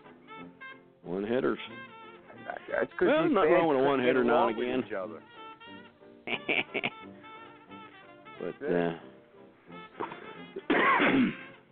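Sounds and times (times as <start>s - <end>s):
speech: 1.1s - 1.9s, 2.5s - 5.4s, 6.3s - 6.9s, 8.4s - 9.1s, 10.6s - 11.5s
laughter: 6.3s - 7.1s
man's soft throaty sounds and breaths: 9.0s - 10.7s
man coughing a harsh raspy fit: 10.0s - 11.5s.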